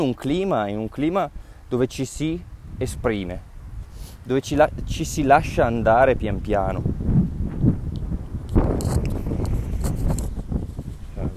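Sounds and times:
speech: 0.0 - 3.5, 4.2 - 7.8
wind buffeting microphone: 0.0 - 11.3
rustling bumps: 8.5 - 11.3.

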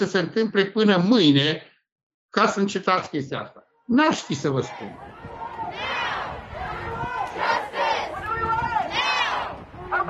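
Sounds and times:
speech: 0.0 - 1.7, 2.3 - 5.1
protest crowd chanting slogans: 4.5 - 10.0.

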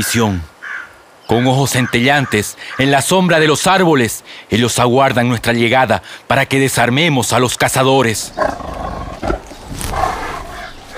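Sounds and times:
speech: 0.0 - 0.5, 1.3 - 9.9
tigers roaring: 8.3 - 10.9.

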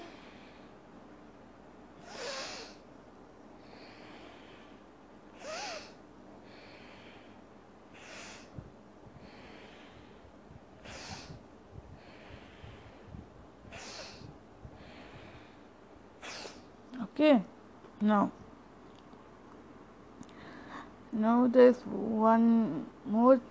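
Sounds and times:
nasal breathing through the right nostril during a breathing exercise: 3.6 - 16.7, 20.2 - 21.0
speech: 17.2 - 18.4, 21.2 - 23.4.

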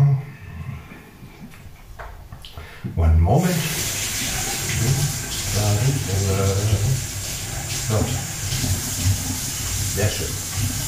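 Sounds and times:
speech: 2.9 - 3.9, 5.8 - 6.9, 7.9 - 8.2, 10.0 - 10.8
spoon being rinsed under a running tap: 3.4 - 10.8.

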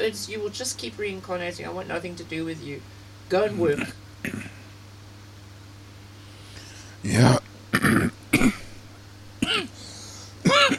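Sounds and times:
speech: 0.0 - 4.6, 7.0 - 7.4
faint steady hum: 0.0 - 10.7
harsh coughs: 3.8 - 4.6, 7.8 - 8.8, 9.4 - 9.8, 10.4 - 10.7.

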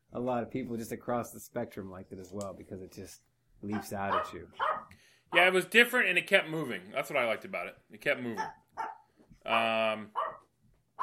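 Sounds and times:
speech: 0.2 - 10.2
dog barking in a household: 3.7 - 4.9, 8.3 - 11.0.

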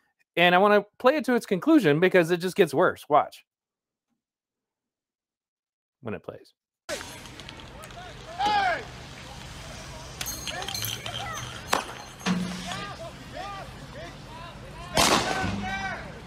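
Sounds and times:
speech: 0.4 - 3.5, 6.0 - 6.6
AR-15 rifle gunfire aimed at police: 15.0 - 15.7.

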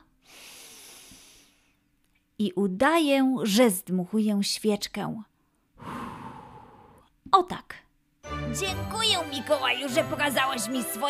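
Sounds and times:
long steady breath drawn in through the nose: 0.2 - 1.8, 5.8 - 7.1
speech: 2.4 - 5.3, 7.3 - 7.8, 8.5 - 11.0.

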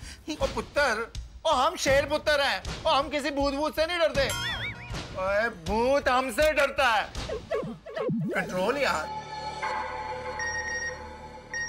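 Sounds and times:
speech: 0.2 - 4.5, 5.2 - 9.2
phone electronic ringtone for an incoming message: 10.4 - 11.6.

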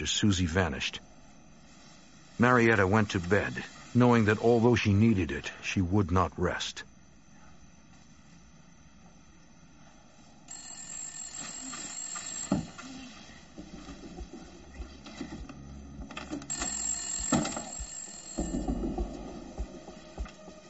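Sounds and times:
speech: 0.0 - 1.1, 2.4 - 6.9
old-style telephone bell ringing: 10.5 - 14.4, 16.3 - 20.3.

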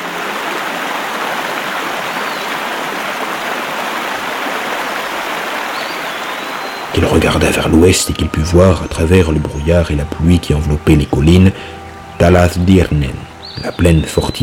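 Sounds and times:
thundering roar of a river plunging underground at falls: 0.0 - 7.2
speech: 7.0 - 14.4.

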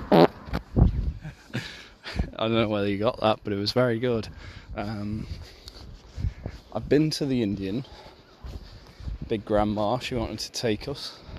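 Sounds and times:
fart into the microphone: 0.0 - 0.6
speech: 2.4 - 5.6, 6.8 - 8.1, 9.3 - 11.2.

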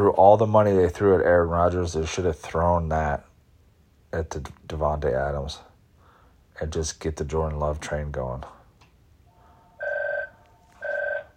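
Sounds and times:
speech: 0.0 - 3.3, 4.1 - 5.7, 6.6 - 8.6
mobile phone ringing: 9.3 - 11.3.

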